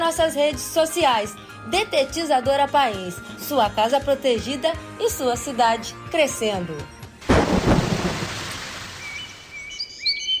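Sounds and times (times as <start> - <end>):
speech: 0.1 - 7.0
loud roll of thunder: 7.2 - 9.1
steady falling rain: 7.2 - 9.6
thin bird chirps: 9.0 - 10.3.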